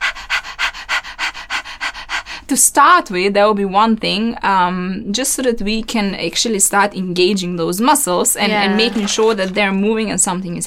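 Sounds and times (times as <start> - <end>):
person imitating dog panting as a breathing exercise: 0.0 - 2.5
speech: 2.5 - 10.6.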